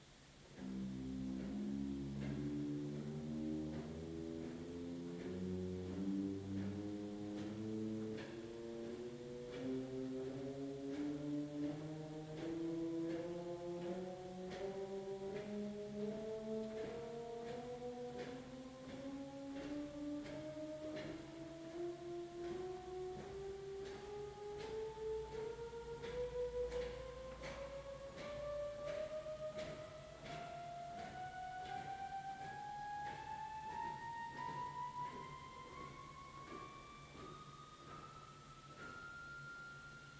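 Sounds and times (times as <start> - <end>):
pipe organ Voix celestis 8-foot manual stop: 0.4 - 40.1.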